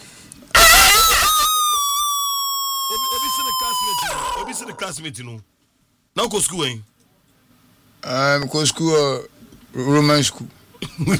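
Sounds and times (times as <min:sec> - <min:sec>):
rooster crowing: 0:00.6 - 0:04.9
speech: 0:04.4 - 0:05.6, 0:06.2 - 0:06.9, 0:08.0 - 0:11.1.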